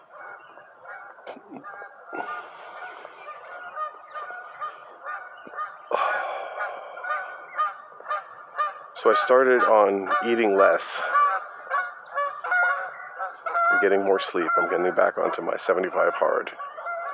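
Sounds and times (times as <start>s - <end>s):
flock of geese honking: 0.0s - 17.1s
speech: 9.0s - 11.2s, 13.8s - 16.7s.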